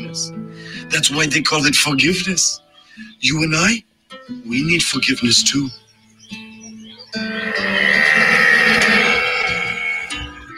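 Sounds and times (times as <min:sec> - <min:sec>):
speech: 0:00.2 - 0:06.4
person imitating cow mooing: 0:07.2 - 0:10.3.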